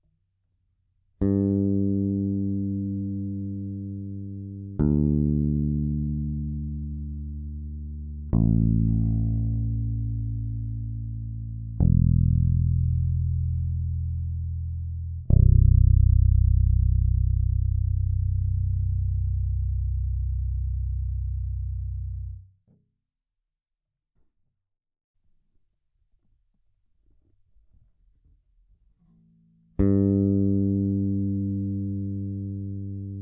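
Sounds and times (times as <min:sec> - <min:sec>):
bass guitar through a Phil Jones EQ: 0:01.2 - 0:22.5, 0:29.2 - 0:33.2.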